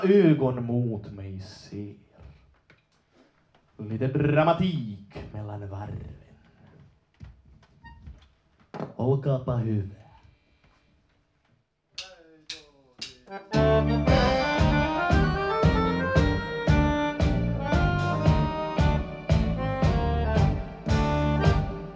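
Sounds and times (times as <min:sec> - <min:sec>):
speech: 0:00.0 - 0:02.0, 0:03.8 - 0:06.2, 0:08.8 - 0:10.0
tango music played by a full ensemble: 0:13.4 - 0:21.9.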